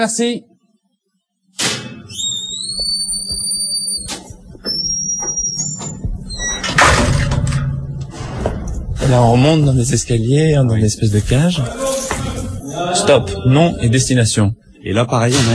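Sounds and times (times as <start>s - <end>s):
speech: 0.0s - 0.5s, 9.1s - 12.0s, 13.0s - 15.5s
heavy metal prison door grinding open in a prison corridor: 5.9s - 9.7s.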